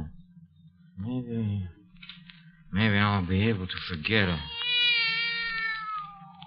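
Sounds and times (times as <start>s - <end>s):
speech: 2.7s - 4.6s
black cat on a table meowing: 4.3s - 6.4s.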